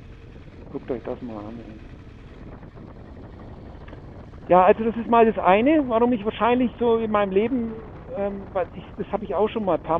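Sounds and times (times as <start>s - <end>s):
motorcycle engine roaring at speed: 0.0s - 9.9s
rushing wind buffeting the microphone: 0.0s - 9.9s
speech: 0.7s - 2.0s, 4.5s - 9.9s.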